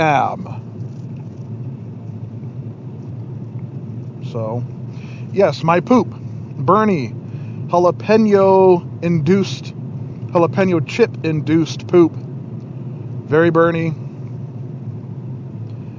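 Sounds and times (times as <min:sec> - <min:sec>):
speech: 0:00.0 - 0:00.6, 0:04.3 - 0:12.2, 0:13.3 - 0:14.0
engine and tire drone inside a moving car: 0:00.0 - 0:15.9.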